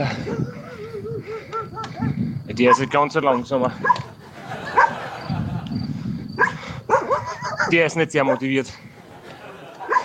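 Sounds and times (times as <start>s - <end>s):
laughter: 0.0s - 2.2s, 4.0s - 6.0s, 8.9s - 10.0s
dogs barking: 0.0s - 5.2s, 6.4s - 8.8s, 9.6s - 10.0s
speech: 2.6s - 4.1s, 7.7s - 8.9s.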